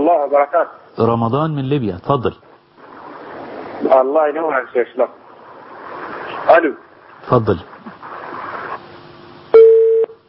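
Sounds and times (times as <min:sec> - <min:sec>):
speech: 0:00.1 - 0:02.5, 0:03.8 - 0:05.2, 0:06.4 - 0:07.7
faint hiss on a telephone line: 0:00.8 - 0:09.6
loud steady telephone beep after a call disconnects: 0:09.5 - 0:10.2.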